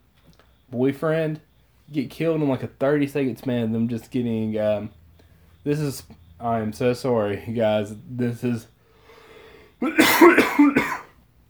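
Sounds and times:
speech: 0.7 - 5.0, 5.6 - 8.7, 9.8 - 11.0
harsh throaty coughs: 9.8 - 11.2.

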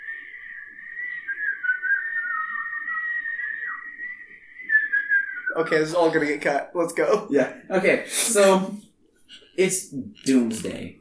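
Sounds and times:
person whistling into the microphone: 0.0 - 5.7
speech: 5.6 - 8.9, 9.6 - 10.9.

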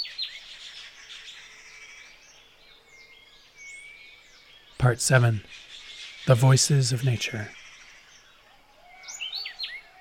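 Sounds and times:
several birds singing in a chorus: 0.0 - 9.9
speech: 4.8 - 5.7, 6.3 - 7.6.

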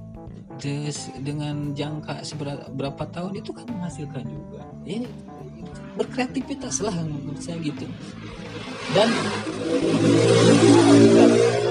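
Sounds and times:
speech: 0.6 - 11.6
motorcycle engine revving: 5.8 - 11.7.

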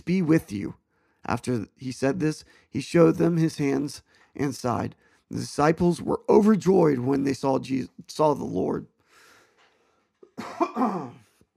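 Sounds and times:
speech: 0.0 - 8.9, 10.4 - 11.2
rough throat-clearing cough: 10.3 - 11.3.

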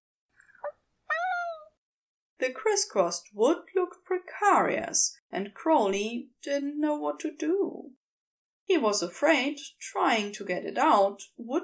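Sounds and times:
small black kitten meowing in a woodpile: 1.1 - 1.7
speech: 2.4 - 8.0, 8.7 - 11.6.

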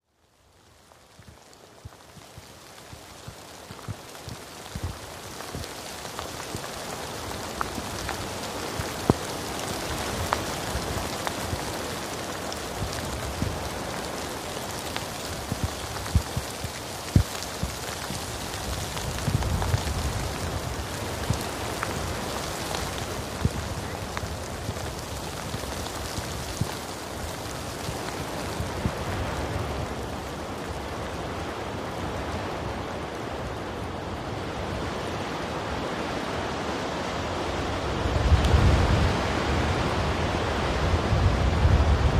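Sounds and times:
light rain pattering: 0.0 - 42.1.

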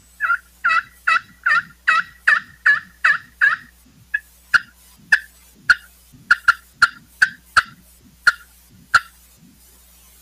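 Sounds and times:
turkey call played on aluminum friction call, yelps and clucks: 0.2 - 9.2.

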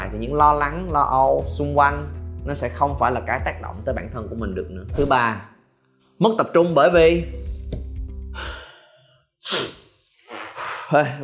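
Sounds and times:
speech: 0.1 - 5.5, 6.2 - 7.4, 10.9 - 11.2
person catching breath after running out of breath while talking: 8.3 - 11.1.

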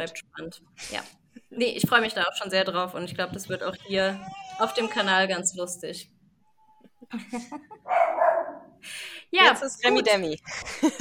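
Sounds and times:
speech: 0.0 - 6.2, 7.1 - 8.1, 8.8 - 10.9
laughter: 7.1 - 7.8, 10.5 - 10.9
puppy yipping and whining bark: 7.9 - 8.6.

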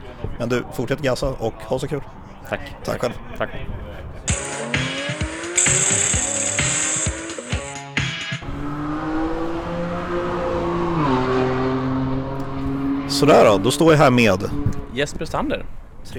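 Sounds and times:
speech: 0.4 - 4.3, 13.2 - 16.1
racing cars at a track day at Mantorp Park passing at high revs: 4.3 - 7.6, 8.4 - 15.4.

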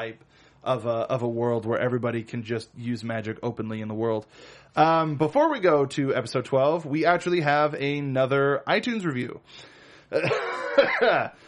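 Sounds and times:
speech: 0.0 - 11.4
person coughing: 10.1 - 11.4.

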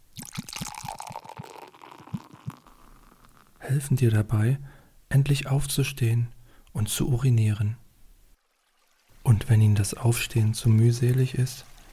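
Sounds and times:
water pouring into a glass: 0.1 - 3.5
speech: 3.7 - 7.8, 9.3 - 11.7.

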